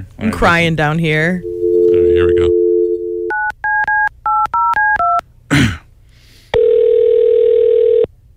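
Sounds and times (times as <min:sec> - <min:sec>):
speech: 0:00.0 - 0:01.5
telephone dial tone: 0:01.4 - 0:03.4, 0:06.6 - 0:08.1
long steady ringback-style tone: 0:01.4 - 0:05.2, 0:06.6 - 0:08.1.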